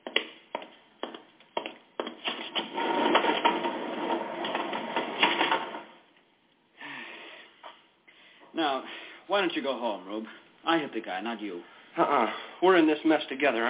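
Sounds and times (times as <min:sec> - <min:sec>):
garage doors being closed after a car is backed in: 0:02.2 - 0:06.1
speech: 0:08.6 - 0:13.6.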